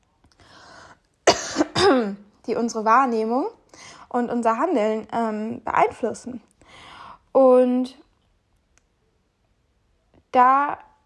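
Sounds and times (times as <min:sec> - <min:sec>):
person coughing: 0:01.2 - 0:02.2
speech: 0:01.9 - 0:06.5, 0:07.4 - 0:08.0, 0:10.3 - 0:10.9.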